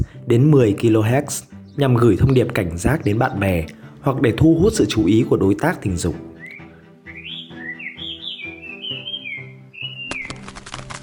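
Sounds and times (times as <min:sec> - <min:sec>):
speech: 0:00.3 - 0:06.3
nightingale singing: 0:01.5 - 0:03.6, 0:06.2 - 0:10.6.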